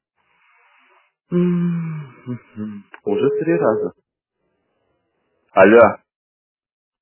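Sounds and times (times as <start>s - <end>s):
speech: 1.3s - 1.7s, 2.3s - 4.1s, 5.5s - 6.0s
ringback beeps of an unanswered phone call: 3.1s - 3.9s.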